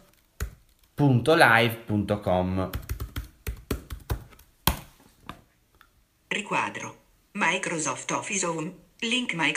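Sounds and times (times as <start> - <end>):
crisp keystrokes on a computer keyboard: 0.0 - 1.0, 2.7 - 4.8
speech: 1.0 - 2.9, 6.5 - 9.5.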